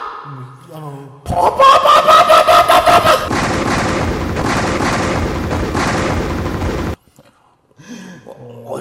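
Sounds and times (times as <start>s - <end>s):
laughter: 1.4s - 3.3s
loud roaring explosion sound effect with pulsing bursts: 2.9s - 7.0s.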